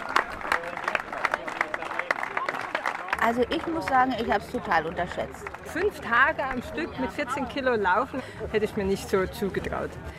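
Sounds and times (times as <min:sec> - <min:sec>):
crowd cheering at a finish line: 0:00.0 - 0:06.6
hands clapping: 0:00.0 - 0:06.6
speech: 0:03.3 - 0:10.1.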